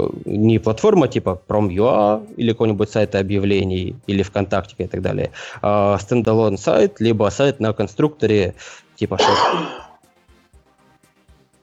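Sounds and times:
speech: 0.0 - 9.8
person coughing: 9.2 - 10.0.

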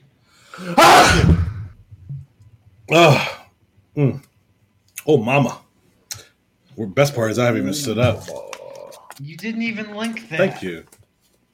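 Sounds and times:
speech: 0.6 - 1.4, 2.9 - 3.4, 4.0 - 4.3, 5.1 - 5.6, 6.8 - 8.5, 9.2 - 11.0
person sneezing loudly: 0.6 - 1.7
person exclaiming: 7.6 - 9.2.

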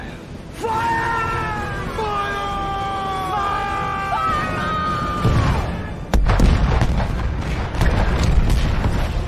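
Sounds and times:
wavering horn-like wail in a cannon blast sound effect: 0.5 - 6.1
cannon blast sound effect with heavy boom and rumbling echo: 6.1 - 9.2.

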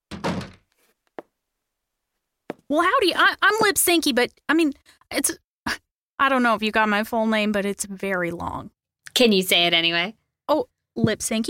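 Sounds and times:
heavy door swinging shut with a muffled thump: 0.0 - 0.7
speech: 2.7 - 11.4.

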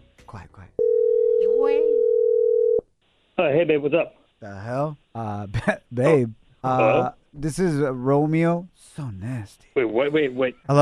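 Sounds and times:
speech: 0.3 - 0.8, 3.4 - 10.8
phone ringing tone as a loud steady electronic hum: 0.8 - 2.8.

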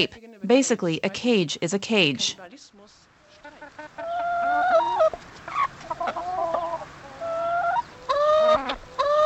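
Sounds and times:
speech: 0.0 - 2.8
free-range hens clucking and warbling: 3.2 - 9.2.

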